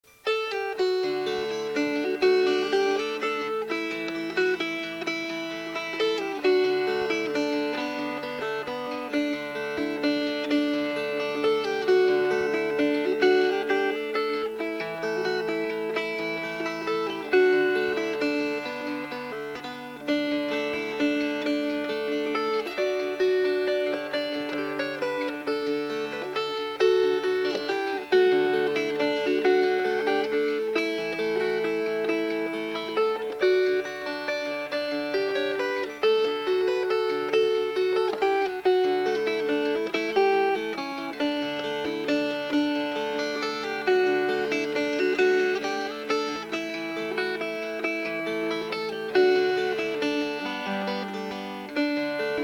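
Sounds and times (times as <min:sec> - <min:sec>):
fingerpicked guitar: 0:00.0 - 0:52.4.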